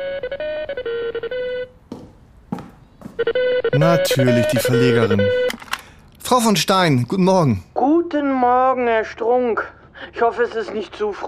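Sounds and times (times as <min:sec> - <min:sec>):
telephone ringing with a melodic ringtone: 0:00.0 - 0:01.8, 0:03.2 - 0:05.8
speech: 0:03.8 - 0:05.6, 0:06.3 - 0:11.2.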